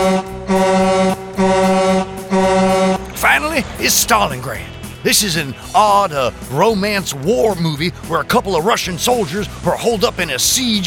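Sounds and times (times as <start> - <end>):
brassy horn honks: 0.0 - 6.8
speech: 3.6 - 10.8.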